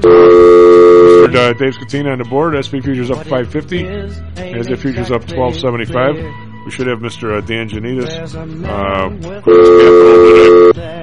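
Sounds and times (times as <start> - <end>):
telephone dial tone: 0.0 - 1.3, 9.5 - 10.8
speech: 1.4 - 11.0.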